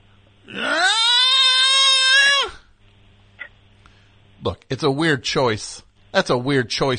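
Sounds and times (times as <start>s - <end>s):
singer screaming in a rock song: 0.5s - 2.7s
speech: 4.4s - 6.9s.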